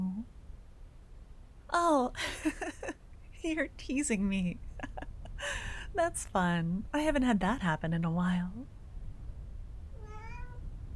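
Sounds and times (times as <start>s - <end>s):
low rumble: 0.0s - 10.9s
speech: 1.7s - 4.7s, 5.4s - 8.8s
cat meowing: 10.0s - 10.7s.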